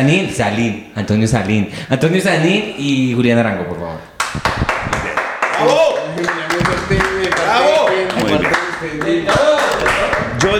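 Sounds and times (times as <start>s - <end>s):
speech: 0.0s - 4.6s, 5.6s - 9.5s
crowd applauding to welcome guests: 4.2s - 10.5s.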